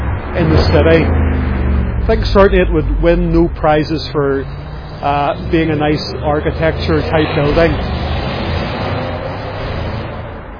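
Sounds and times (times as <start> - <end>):
V8 car engine roaring past: 0.0 - 10.5
street noise: 0.0 - 10.5
speech: 0.4 - 1.2, 2.1 - 8.0.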